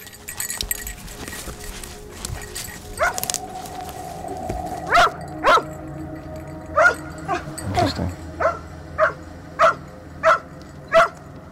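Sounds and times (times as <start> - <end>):
dog barking: 3.0 - 3.3, 4.9 - 5.7, 6.8 - 11.2
person speaking: 3.0 - 8.7.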